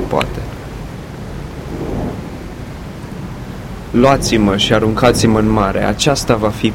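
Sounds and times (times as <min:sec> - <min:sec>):
steady rain in a thunderstorm: 0:00.0 - 0:06.7
stormy wind: 0:00.0 - 0:06.7
speech: 0:00.1 - 0:00.5, 0:03.9 - 0:06.7
deep rolling thunder: 0:01.0 - 0:06.4.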